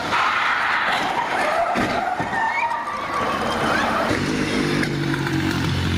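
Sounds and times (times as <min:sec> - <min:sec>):
ambulance colliding with a bus: 0:00.0 - 0:05.2
busy street traffic roaring: 0:00.0 - 0:05.9
tire screech: 0:00.0 - 0:05.9
low rumbling engine drone: 0:02.6 - 0:05.9.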